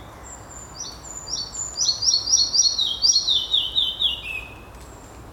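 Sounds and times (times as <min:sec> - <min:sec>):
red-breasted flycatcher calling: 0:00.7 - 0:04.5.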